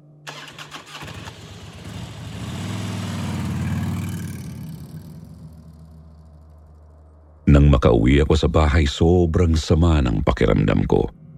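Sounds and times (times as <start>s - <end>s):
small tricycle engine sputtering and puttering: 0.3s - 5.5s
speech: 7.8s - 11.2s.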